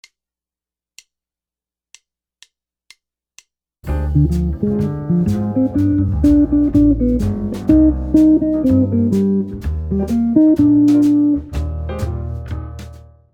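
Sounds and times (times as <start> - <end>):
minor ii V I arpeggios on guitar: 4.1 - 11.4.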